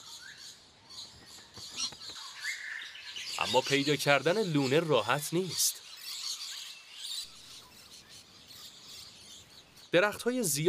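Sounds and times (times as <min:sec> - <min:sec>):
lorikeets calling in Australia: 0:00.0 - 0:10.6
speech: 0:03.4 - 0:05.8, 0:09.9 - 0:10.6.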